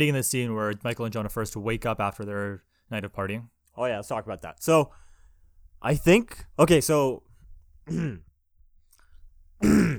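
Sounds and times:
speech: 0.0s - 5.0s, 5.8s - 7.3s, 7.9s - 8.3s, 9.6s - 9.9s
person clearing throat: 7.9s - 8.3s, 9.6s - 9.9s.

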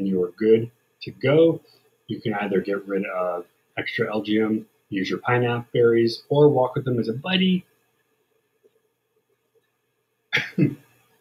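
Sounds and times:
speech: 0.1s - 7.7s, 10.4s - 10.8s
person sneezing: 10.4s - 10.8s.

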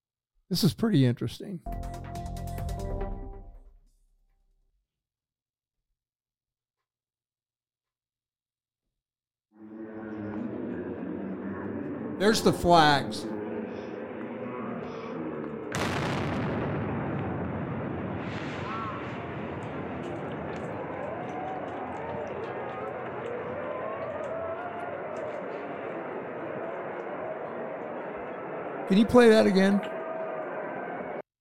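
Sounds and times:
speech: 0.5s - 2.0s, 12.3s - 13.3s, 28.9s - 30.0s
crowd sounds: 9.6s - 31.2s
long roar of rumbling noise and commotion: 13.2s - 26.8s
bomb blast in a played video recording: 15.6s - 22.4s.

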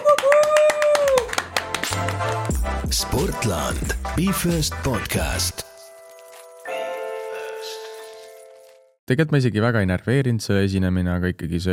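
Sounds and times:
people clapping: 0.0s - 3.6s
speech: 2.9s - 5.7s, 9.1s - 11.7s.

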